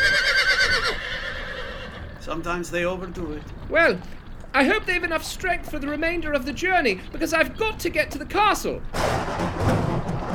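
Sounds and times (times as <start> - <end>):
horses neighing: 0.0 - 5.9
speech: 2.4 - 9.8.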